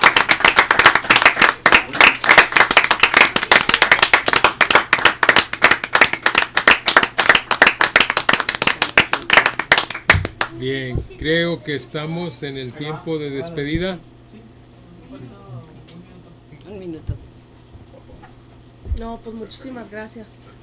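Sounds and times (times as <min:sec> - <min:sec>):
crowd applauding as a farewell tribute: 0:00.0 - 0:10.6
speech: 0:10.6 - 0:14.5, 0:19.0 - 0:20.4.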